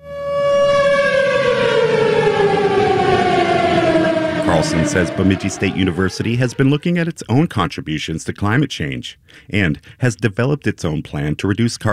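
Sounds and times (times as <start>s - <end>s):
tornado warning siren sounding in Bemidji during a derecho storm: 0.0s - 7.1s
rough rush: 3.0s - 6.8s
speech: 4.7s - 11.9s.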